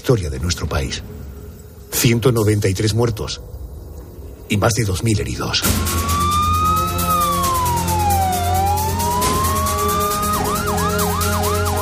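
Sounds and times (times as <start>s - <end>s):
speech: 0.0s - 1.3s, 1.9s - 3.6s, 4.5s - 6.1s
ambulance sirens wailing and yelping: 5.7s - 11.8s.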